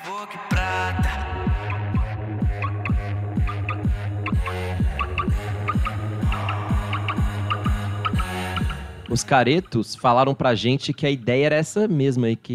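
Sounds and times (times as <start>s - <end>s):
electronic dance track: 0.0s - 10.7s
steady pounding kick drum: 0.6s - 8.8s
speech: 9.2s - 12.5s.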